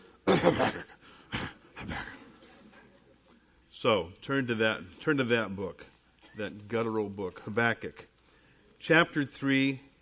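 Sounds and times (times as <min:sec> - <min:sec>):
throat clearing: 0:00.3 - 0:02.2
speech: 0:00.4 - 0:00.9, 0:03.8 - 0:08.1, 0:08.8 - 0:09.9.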